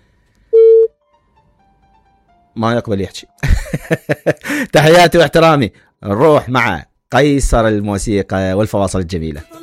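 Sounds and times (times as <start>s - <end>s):
telephone tone as a call is placed on a radio call-in line: 0.6s - 0.9s
speech: 2.6s - 9.6s.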